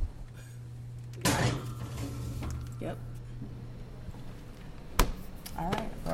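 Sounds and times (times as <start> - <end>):
airy rush of oven fan noise: 0.0 - 6.1
low steady hum: 0.0 - 6.1
oven door opening: 1.1 - 3.0
speech: 2.8 - 3.5, 5.6 - 6.1.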